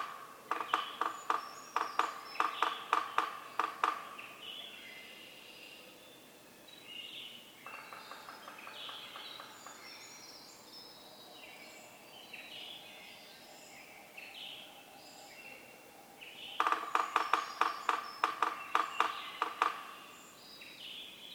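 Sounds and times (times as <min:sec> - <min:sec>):
Yellow-bellied Sapsucker drumming in Atlanta Michigan: 0:00.0 - 0:04.4, 0:07.6 - 0:10.0, 0:16.6 - 0:20.1.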